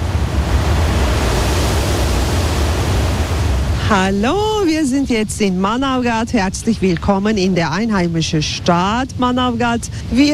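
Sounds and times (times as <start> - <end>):
roaring river waterfall: 0.0 - 4.7
speech: 3.9 - 10.3.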